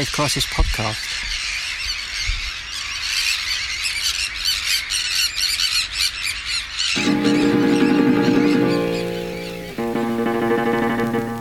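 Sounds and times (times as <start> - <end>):
speech: 0.0 - 1.4
alarmed gulls and terns squealing and squawking while taking off: 1.0 - 10.2
sustained tonal sound: 7.0 - 11.3.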